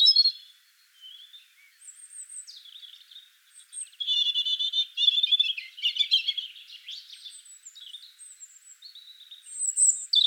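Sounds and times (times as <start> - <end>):
European robin Erithacus rubecula song: 0.0 - 10.2.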